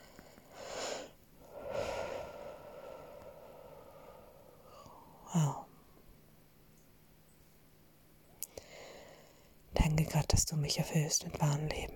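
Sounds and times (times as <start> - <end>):
deep breathing: 0.0 - 6.1, 8.5 - 9.6
speech: 10.1 - 11.9.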